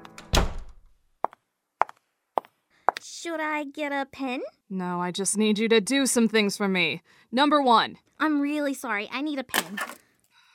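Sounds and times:
door swinging shut with a solid thud: 0.1s - 0.9s
speech: 3.0s - 10.0s.

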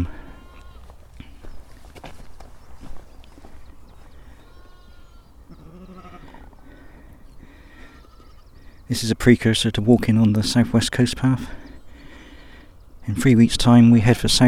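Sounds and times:
sheep bleating in an open field: 0.0s - 1.0s, 4.3s - 6.4s, 7.7s - 8.5s
footsteps: 0.0s - 4.2s
speech: 8.9s - 11.6s, 13.1s - 14.4s.

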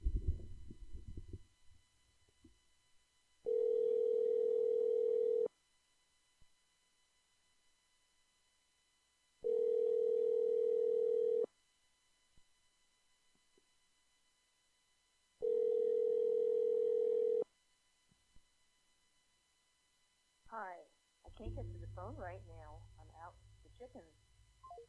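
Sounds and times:
outgoing phone call ringing tone, unanswered: 3.5s - 5.5s, 9.4s - 11.5s, 15.4s - 17.4s
person talking: 20.5s - 24.8s.

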